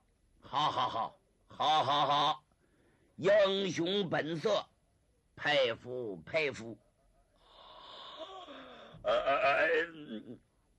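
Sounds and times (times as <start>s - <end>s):
speech: 0.5s - 2.4s, 3.2s - 4.7s, 5.4s - 6.8s, 9.0s - 10.5s
man imitating an old man's long yawn: 7.5s - 10.4s.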